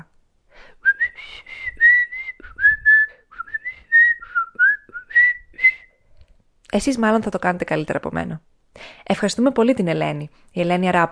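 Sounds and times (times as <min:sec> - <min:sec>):
melodic whistling of a song: 0:00.9 - 0:05.9
speech: 0:06.8 - 0:08.5, 0:09.1 - 0:11.1.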